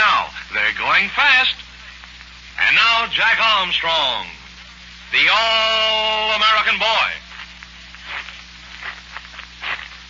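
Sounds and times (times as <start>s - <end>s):
faint steady hum: 0.0s - 10.0s
speech: 1.0s - 1.6s, 2.7s - 4.4s, 5.1s - 7.2s
slow scuffing footsteps approaching: 7.2s - 10.0s.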